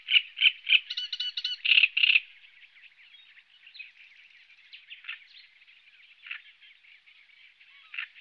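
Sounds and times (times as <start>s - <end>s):
Great reed warbler song: 0.0s - 8.2s.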